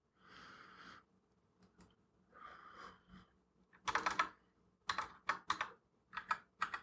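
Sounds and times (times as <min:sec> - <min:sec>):
crisp computer keyboard typing: 0:03.8 - 0:06.8.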